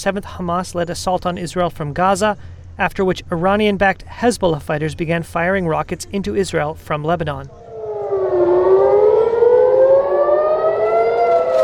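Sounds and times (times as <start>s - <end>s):
speech: 0.0s - 7.6s
air raid siren wailing: 7.5s - 11.6s.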